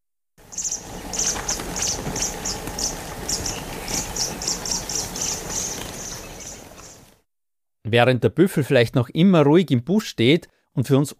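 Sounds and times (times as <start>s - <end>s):
oxpeckers giving alarm calls in the bush near buffalo: 0.4s - 7.1s
speech: 7.9s - 11.1s.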